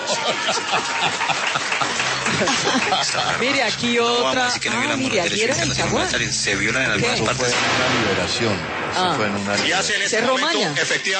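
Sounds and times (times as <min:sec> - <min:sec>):
people chuckling: 0:00.0 - 0:03.6
audience applause: 0:00.0 - 0:05.0
speech: 0:00.3 - 0:01.5, 0:02.4 - 0:11.1.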